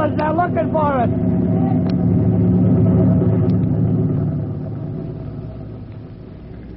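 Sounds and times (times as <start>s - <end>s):
helicopter hovering overhead: 0.0s - 6.7s
speech: 0.2s - 1.8s.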